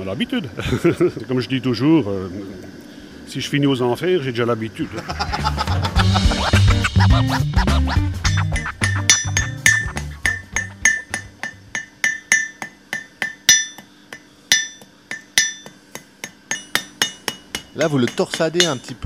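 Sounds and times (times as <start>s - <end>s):
speech: 0.0s - 5.5s, 7.0s - 8.6s, 17.8s - 19.0s
laughter: 0.6s - 1.3s, 4.8s - 8.0s
blacksmith hammering a square iron bar at the forge: 8.2s - 19.0s.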